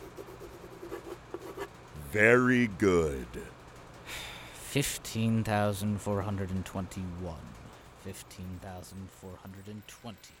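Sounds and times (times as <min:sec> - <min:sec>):
pencil scratching on paper signing an agreement: 0:00.0 - 0:01.7
speech: 0:02.1 - 0:10.3.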